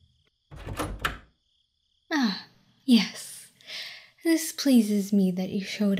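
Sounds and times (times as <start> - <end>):
rattling clunk of door latch and handle: 0.5 - 1.3
speech: 2.2 - 3.3, 4.3 - 5.9.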